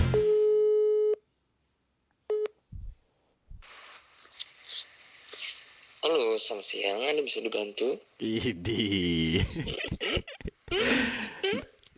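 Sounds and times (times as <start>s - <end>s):
burst of electronic phone tones as a call is placed: 0.1s - 1.2s
speech: 6.4s - 11.0s
laughter: 8.2s - 11.8s.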